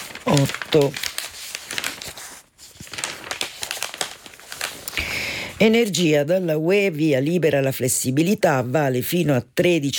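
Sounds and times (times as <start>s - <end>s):
newspaper pages being turned, rustling and crinkling: 0.0s - 6.0s
speech: 0.2s - 1.1s, 5.6s - 9.9s.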